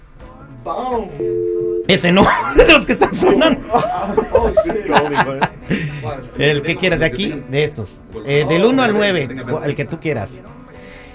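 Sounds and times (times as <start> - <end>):
speech: 0.6 - 10.6
steady loud electronic telephone line tone: 1.2 - 1.9
laughter: 2.2 - 6.3.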